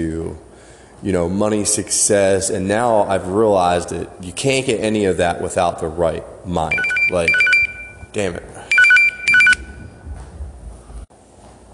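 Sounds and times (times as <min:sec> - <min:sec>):
speech: 0:00.0 - 0:07.5, 0:08.1 - 0:08.5
low rumble of room noise: 0:00.0 - 0:11.7
phone ringing with warbling electronic ringtone: 0:06.7 - 0:08.1, 0:08.7 - 0:09.9.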